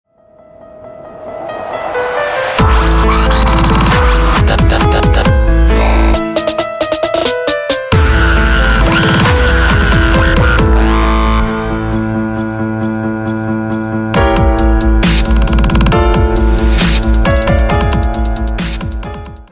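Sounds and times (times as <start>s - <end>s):
piano dubstep music: 0.6s - 19.4s.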